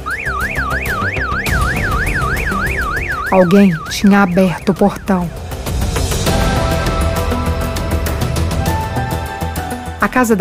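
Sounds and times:
garage alarm blaring with a warbling electronic tone: 0:00.0 - 0:07.6
rumble: 0:01.5 - 0:09.0
speech: 0:03.3 - 0:05.4, 0:10.1 - 0:10.3.

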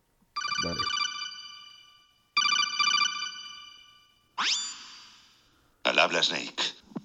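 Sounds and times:
electronic phone ringtone for an incoming call: 0:00.4 - 0:04.7
speech: 0:06.1 - 0:07.0.

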